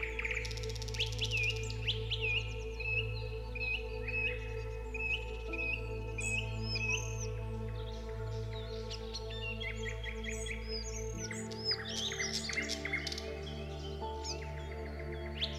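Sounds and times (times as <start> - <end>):
birds singing melodiously in a forest: 0.0 - 15.5
soft relaxing music: 0.0 - 15.5.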